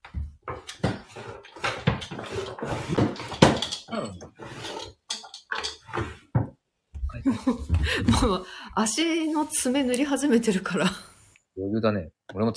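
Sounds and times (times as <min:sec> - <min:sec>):
rummaging through a drawer with clattering and rattling objects: 0:00.0 - 0:06.4
speech: 0:03.9 - 0:04.8, 0:08.2 - 0:11.0, 0:11.8 - 0:12.5.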